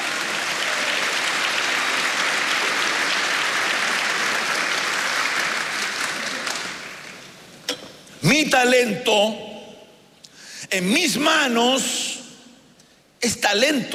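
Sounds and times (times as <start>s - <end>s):
audience clapping hands: 0.0s - 7.4s
speech: 8.3s - 9.5s, 10.7s - 12.0s, 13.2s - 13.9s.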